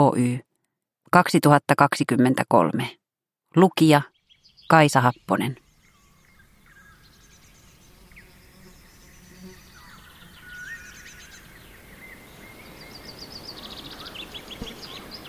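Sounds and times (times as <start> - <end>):
speech: 0.0 - 0.5, 1.1 - 4.1, 4.7 - 5.6
birds chirping and trilling in a forest: 3.8 - 15.2
wind rustling in a forest: 4.3 - 15.2
insects buzzing in a forest: 5.6 - 15.2.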